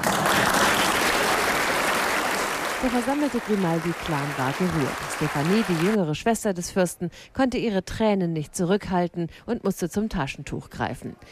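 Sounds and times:
applause at a princely wedding ceremony: 0:00.0 - 0:06.0
speech: 0:02.8 - 0:11.3.

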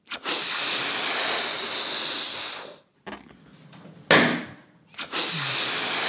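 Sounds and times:
New Year's Eve firework rocket hissing: 0:00.3 - 0:02.8, 0:05.0 - 0:06.0.

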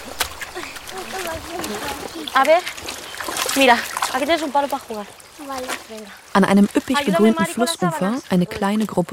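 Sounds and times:
cloth dunked and slapped in river water: 0:00.0 - 0:06.1
river water splashing as laundry is washed: 0:00.0 - 0:09.1
women chattering: 0:00.5 - 0:02.8, 0:03.5 - 0:09.1
speech: 0:01.2 - 0:03.0, 0:03.6 - 0:09.1.

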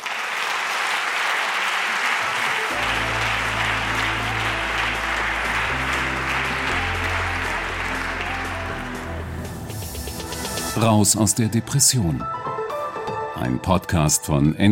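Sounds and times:
audience applause: 0:00.0 - 0:09.6
music with a deep bass line: 0:02.7 - 0:10.8
speech: 0:10.8 - 0:12.5, 0:13.4 - 0:14.7.

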